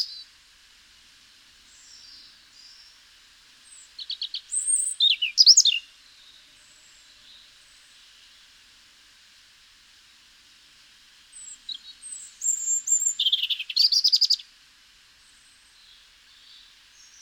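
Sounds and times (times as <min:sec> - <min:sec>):
European robin Erithacus rubecula singing thin whistles and a buzzy rattle: 0:00.0 - 0:00.3, 0:01.7 - 0:03.0, 0:03.6 - 0:08.1, 0:11.3 - 0:14.5, 0:15.2 - 0:17.2.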